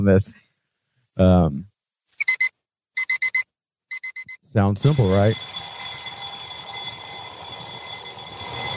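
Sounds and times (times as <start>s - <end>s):
speech: 0.0s - 0.4s, 1.2s - 1.7s, 4.5s - 5.7s
alarm clock ringtone of rapid electronic beeps: 2.2s - 5.8s
loud sustained electronic ringing: 2.2s - 8.7s.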